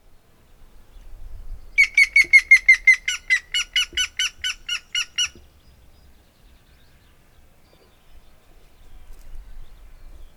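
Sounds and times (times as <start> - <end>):
grey-headed woodpecker Picus canus giving nasal notes: 1.8 - 5.5.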